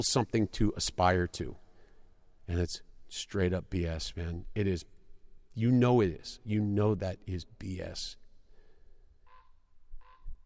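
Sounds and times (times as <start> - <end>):
speech: 0.0 - 1.6, 2.5 - 5.0, 5.6 - 8.2
crow cawing: 9.2 - 10.3.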